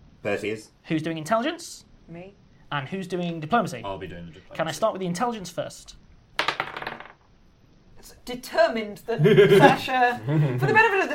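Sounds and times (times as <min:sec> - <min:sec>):
speech: 0:00.2 - 0:06.0, 0:08.0 - 0:11.1
dice falling off a table and clattering on a hard surface: 0:06.4 - 0:07.3
laughter: 0:09.2 - 0:11.1.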